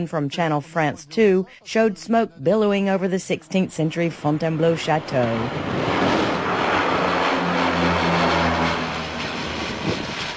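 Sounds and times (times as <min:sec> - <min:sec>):
speech: 0:00.0 - 0:06.0
Canadair firefighting planes roaring overhead: 0:02.7 - 0:10.3.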